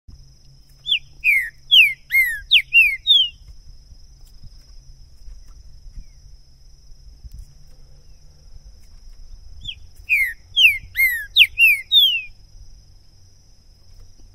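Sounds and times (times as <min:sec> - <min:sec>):
green-winged saltator singing clear whistled phrases of falling slurred notes: 0:00.9 - 0:03.4, 0:09.6 - 0:12.4.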